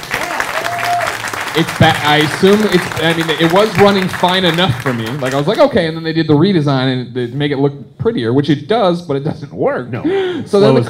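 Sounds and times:
crowd applause: 0:00.0 - 0:05.6
speech: 0:01.6 - 0:10.8.

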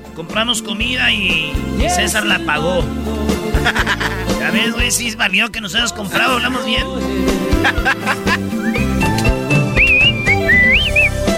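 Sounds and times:
speech: 0:00.2 - 0:08.4
overlapping voices: 0:01.6 - 0:11.0
people laughing: 0:03.4 - 0:04.9, 0:06.0 - 0:09.0
person whistling a short wavering melodic phrase: 0:08.5 - 0:11.3.

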